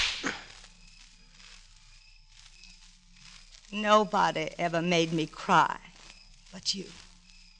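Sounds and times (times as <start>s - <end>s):
sharp slap of skin on skin: 0.0s - 0.5s
speech: 3.7s - 5.9s, 6.5s - 7.0s.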